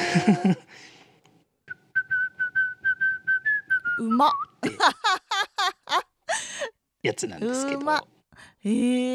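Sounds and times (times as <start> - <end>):
speech: 0.1 - 0.9, 4.1 - 5.3, 7.1 - 9.1
person whistling a bright theme park tune: 1.7 - 4.5.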